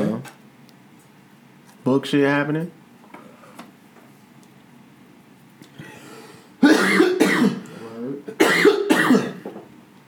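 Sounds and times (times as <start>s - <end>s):
speech: 1.8s - 2.8s
person coughing hard: 6.6s - 9.5s.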